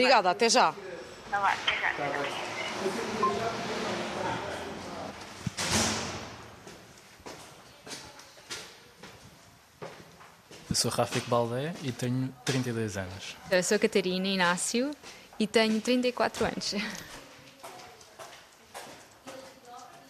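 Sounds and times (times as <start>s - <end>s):
speech: 0.0s - 3.6s, 10.7s - 17.2s
door opened and shut with a solid thud: 5.4s - 6.5s.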